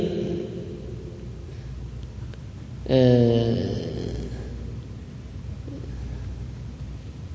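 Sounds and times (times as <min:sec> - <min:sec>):
speech: 0:02.9 - 0:03.8
voice imitating human snoring: 0:02.9 - 0:04.6.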